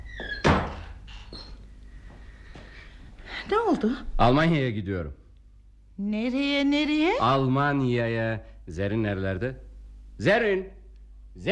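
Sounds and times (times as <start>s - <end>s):
door pushed shut with a solid thunk: 0.0s - 1.4s
faint door creak: 0.0s - 1.7s
speech: 3.5s - 5.2s, 6.0s - 9.6s, 10.2s - 10.8s.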